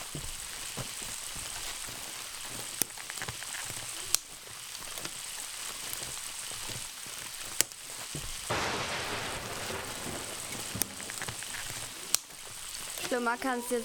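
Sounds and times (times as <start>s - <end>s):
heavy rain: 0.0s - 13.8s
sharp rain drops tapping: 7.6s - 13.2s
speech: 13.2s - 13.8s.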